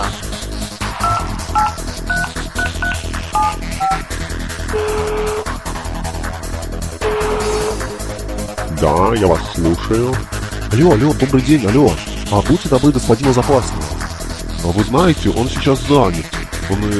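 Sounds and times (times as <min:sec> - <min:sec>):
steady rhythmic music bed: 0:00.0 - 0:16.9
phone ringing tones: 0:01.0 - 0:04.1, 0:04.7 - 0:05.5
touch-tone beeps of phone number being keyed in: 0:01.0 - 0:04.1
speech: 0:09.1 - 0:13.9, 0:14.6 - 0:16.9.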